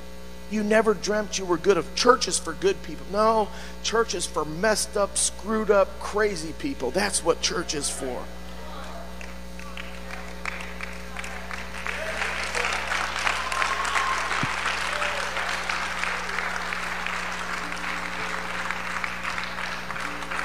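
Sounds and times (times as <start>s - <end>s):
low steady hum: 0.0s - 20.4s
speech: 0.5s - 8.4s
church audience clapping and applauding: 8.8s - 20.4s.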